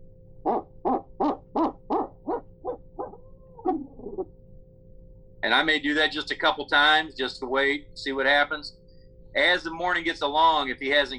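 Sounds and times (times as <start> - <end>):
owl-scream imitation hoots blown on a turkey hunting locator call: 0.4 - 4.3
speech: 5.5 - 8.8, 9.4 - 11.1.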